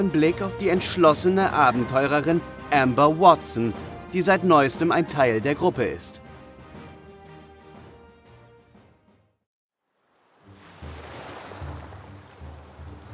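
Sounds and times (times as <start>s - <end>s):
speech: 0.0s - 6.2s
gentle ocean waves on the open sea: 10.0s - 13.1s.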